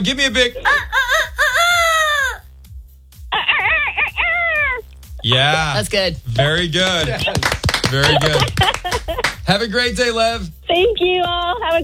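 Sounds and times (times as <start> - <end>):
speech: 0.0 - 1.0, 5.3 - 11.8
laughter: 0.0 - 2.4, 3.3 - 11.8
person imitating a rooster crowing: 0.6 - 2.4.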